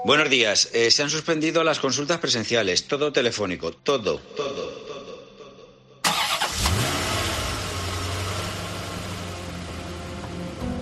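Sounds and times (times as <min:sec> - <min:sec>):
speech: 0:00.0 - 0:04.8
car engine cranking and catching: 0:06.0 - 0:10.8.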